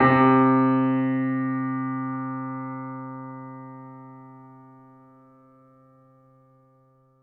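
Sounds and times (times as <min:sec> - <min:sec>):
grand piano C3 note played forte: 0:00.0 - 0:05.5.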